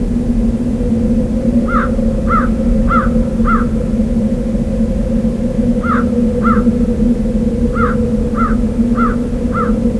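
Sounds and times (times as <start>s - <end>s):
wind: 0.0s - 9.9s
crow cawing in wind: 1.7s - 3.7s, 5.8s - 6.7s, 7.7s - 9.8s.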